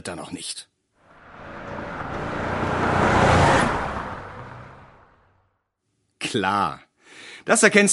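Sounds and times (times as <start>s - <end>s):
speech: 0.0s - 0.7s, 6.3s - 7.9s
car driving past with engine and tyre noise: 1.0s - 5.6s.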